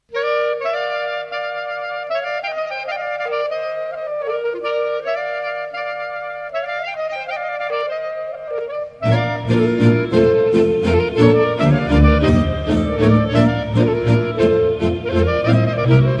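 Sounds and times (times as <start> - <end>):
two clarinets playing a Romanian folk dance: 0.0 - 16.1.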